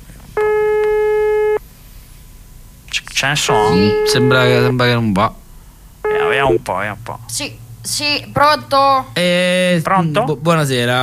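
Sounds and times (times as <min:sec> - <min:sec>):
low hiss: 0:00.3 - 0:11.0
telephone ringing tone on an outgoing call: 0:00.4 - 0:01.6, 0:03.5 - 0:04.8, 0:06.0 - 0:06.6
speech: 0:03.2 - 0:05.4, 0:06.4 - 0:11.0.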